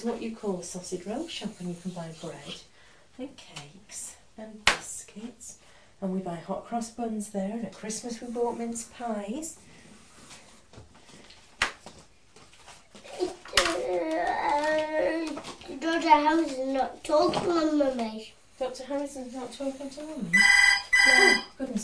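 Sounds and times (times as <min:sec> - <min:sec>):
speech: 0:00.0 - 0:09.7, 0:13.9 - 0:21.8
high-pitched child-like voices chattering and squealing: 0:20.3 - 0:21.6
telephone ringing with a trilling electronic tone: 0:20.3 - 0:21.6.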